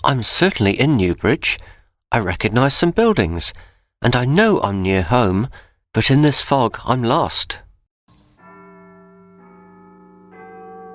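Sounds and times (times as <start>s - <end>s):
speech: 0.0s - 7.6s
church bell tolling midnight with slow heavy strokes: 8.1s - 10.9s.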